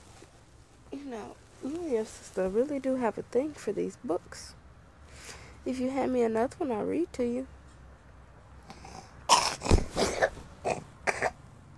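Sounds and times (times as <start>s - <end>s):
speech: 1.0s - 4.6s, 5.3s - 7.6s
short harsh throaty coughs: 9.3s - 11.4s.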